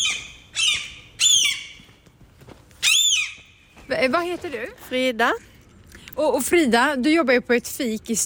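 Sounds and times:
gulls squawking in harsh high-pitched calls: 0.0 - 1.8
faint noise: 0.0 - 8.2
speech: 3.9 - 5.5, 6.2 - 8.2.

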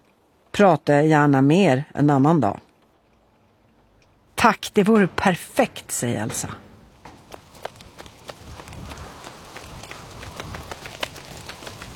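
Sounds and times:
steady wash of noise: 0.0 - 11.9
speech: 0.6 - 2.7, 4.4 - 6.6
footfalls of people running: 6.4 - 11.9.

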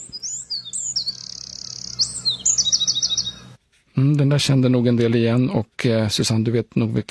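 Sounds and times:
Eurasian wren singing modulated whistles and trills: 0.0 - 3.6
speech: 4.0 - 7.0.

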